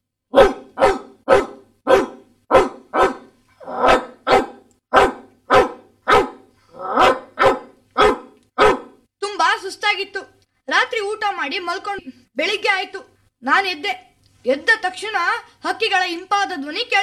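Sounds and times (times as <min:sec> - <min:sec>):
Doberman barking at a neighbour's house: 0:00.3 - 0:09.0
speech: 0:09.9 - 0:17.0.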